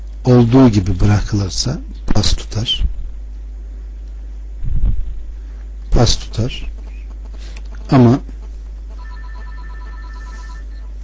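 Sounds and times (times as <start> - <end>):
loud constant low hum and hiss: 0.0 - 11.0
speech: 0.2 - 2.9, 6.0 - 6.8, 7.9 - 8.4
telephone ringing: 8.9 - 10.9.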